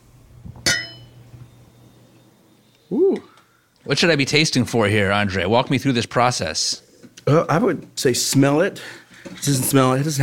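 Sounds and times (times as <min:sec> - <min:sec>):
low hum: 0:00.0 - 0:10.2
wine glasses clinking in a toast: 0:00.6 - 0:01.2
speech: 0:02.9 - 0:03.3, 0:03.9 - 0:10.2.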